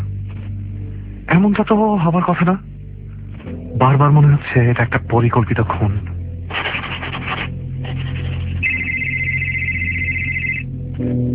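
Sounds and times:
speech: 0:01.4 - 0:02.8, 0:03.8 - 0:06.1
rough scraping noise: 0:06.5 - 0:08.7
electronic telephone ringtone: 0:08.6 - 0:10.7.

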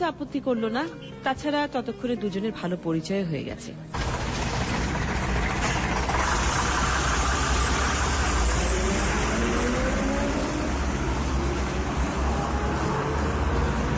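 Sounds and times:
speech: 0:00.0 - 0:04.1
car engine running while driving: 0:04.0 - 0:13.9.

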